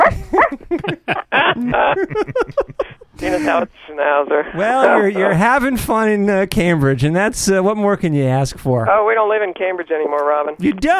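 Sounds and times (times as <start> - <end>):
person imitating small dog barks and yips: 0.0 - 0.6, 4.6 - 5.4
laughter: 0.0 - 3.8, 4.6 - 5.4
speech: 4.5 - 10.9.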